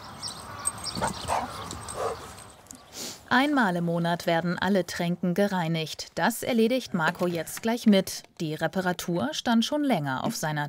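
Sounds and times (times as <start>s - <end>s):
dog barking and yipping: 0.8s - 2.4s
speech: 1.0s - 2.3s, 3.3s - 10.6s
hiss: 1.4s - 3.9s.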